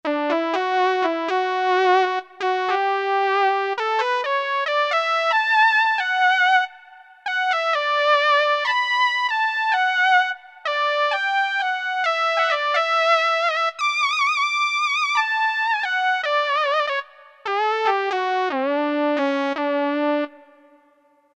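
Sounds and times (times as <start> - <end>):
lead woodwinds on E-mu Proteus FX synthesizer: 0.1 - 20.8.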